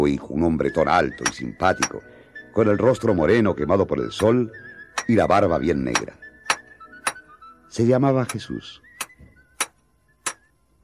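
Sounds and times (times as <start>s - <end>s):
speech: 0.0s - 6.2s, 7.7s - 8.8s
hammer driving nails into horseshoes: 6.0s - 7.2s, 9.0s - 10.5s.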